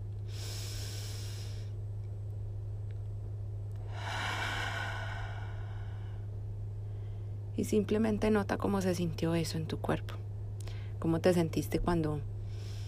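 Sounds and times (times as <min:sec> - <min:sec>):
low steady hum: 0:00.0 - 0:12.8
slow deep inhale through the nose: 0:00.3 - 0:01.7, 0:03.8 - 0:06.2, 0:12.5 - 0:12.8
speech: 0:07.6 - 0:10.3, 0:11.0 - 0:12.3.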